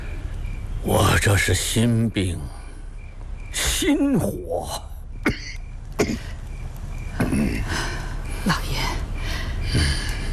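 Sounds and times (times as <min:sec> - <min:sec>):
low steady hum: 0:00.0 - 0:10.3
speech: 0:00.8 - 0:02.6, 0:03.8 - 0:05.4, 0:07.4 - 0:09.0
raspy coughs: 0:05.2 - 0:06.4.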